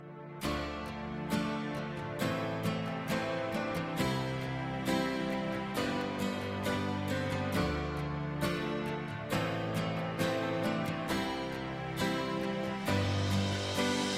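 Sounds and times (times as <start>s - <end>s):
acoustic guitar: 0.0s - 14.1s.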